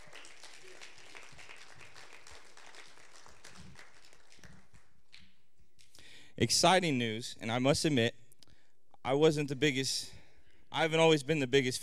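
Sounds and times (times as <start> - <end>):
congregation applauding: 0.0 - 5.0
speech: 6.4 - 8.2, 9.1 - 11.8.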